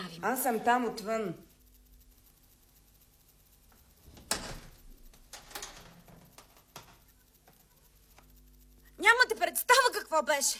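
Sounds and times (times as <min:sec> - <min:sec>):
faint room noise: 0:00.0 - 0:10.5
speech: 0:00.1 - 0:01.5, 0:10.1 - 0:10.5
door knocking and creaking as it swings: 0:04.1 - 0:07.0.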